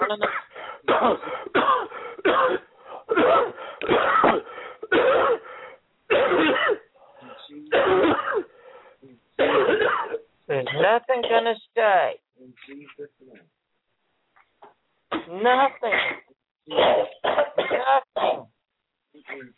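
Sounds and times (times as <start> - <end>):
people coughing deeply during a prayer: 0.0 - 5.5, 6.1 - 6.9, 7.7 - 8.5, 9.4 - 11.5, 15.9 - 18.5
speech: 0.1 - 1.6, 10.9 - 12.2.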